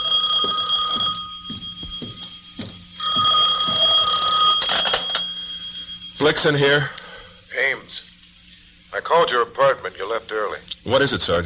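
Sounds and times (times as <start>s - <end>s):
office telephone ringing with a shrill electronic trill: 0.0s - 6.9s
speech: 6.2s - 7.0s, 7.6s - 8.1s, 9.0s - 11.4s.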